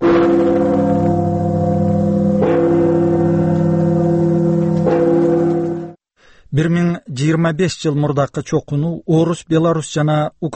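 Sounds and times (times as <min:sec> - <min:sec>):
church bells ringing: 0:00.0 - 0:06.0
speech: 0:06.6 - 0:10.5.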